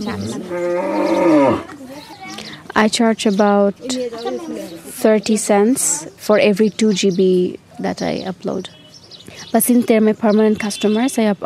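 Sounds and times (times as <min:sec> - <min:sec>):
speech: 0:00.0 - 0:01.8, 0:02.8 - 0:08.8, 0:09.5 - 0:11.4
cow mooing: 0:00.1 - 0:01.7.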